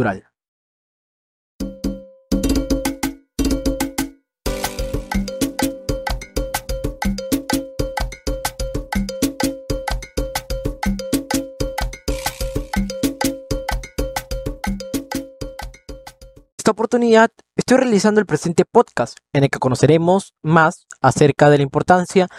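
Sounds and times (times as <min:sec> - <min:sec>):
speech: 0:00.0 - 0:00.3, 0:16.8 - 0:22.3
Peruvian cajón box drum played in a fast driving rhythm: 0:01.7 - 0:16.4.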